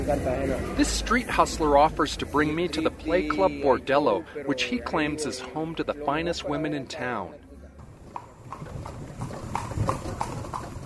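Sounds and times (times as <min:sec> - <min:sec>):
street noise: 0:00.0 - 0:10.8
speech: 0:00.1 - 0:07.4
carriage wheels rumbling: 0:07.8 - 0:10.8
horse hooves clip-clopping on pavement pulling a carriage: 0:07.8 - 0:10.8.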